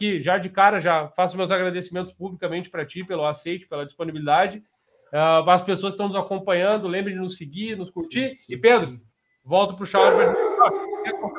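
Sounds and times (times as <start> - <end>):
speech: 0.0 - 11.3
dog barking in short sharp yaps: 10.0 - 11.3.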